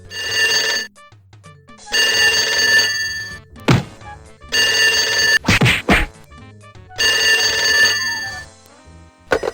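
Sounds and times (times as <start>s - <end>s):
telephone bell ringing: 0.0s - 1.0s, 1.8s - 3.4s, 4.5s - 5.4s, 6.9s - 8.5s, 9.3s - 9.5s
heavy thumps and thwacks of a scuffle between two men: 3.7s - 4.1s, 5.4s - 6.2s.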